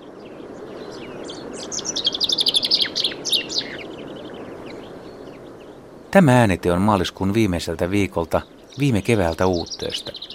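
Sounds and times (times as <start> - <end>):
Common Chaffinch song: 0.0 - 10.3
speech: 6.1 - 10.3.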